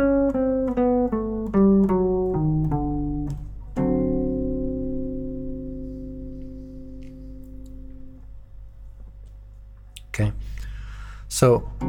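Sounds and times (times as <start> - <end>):
descending plucked Mixolydian flat 2 scale starting from D: 0.0 - 8.8
speech: 11.4 - 11.8.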